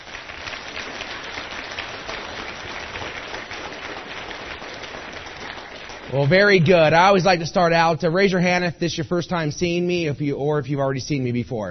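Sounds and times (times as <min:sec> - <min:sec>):
crowd applauding: 0:00.0 - 0:07.4
speech: 0:06.1 - 0:11.6.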